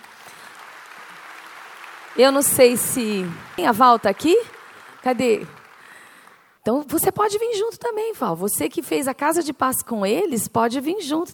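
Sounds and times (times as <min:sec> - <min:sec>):
dense applause from a crowd: 0:00.0 - 0:06.6
speech: 0:02.2 - 0:05.6, 0:06.6 - 0:11.3.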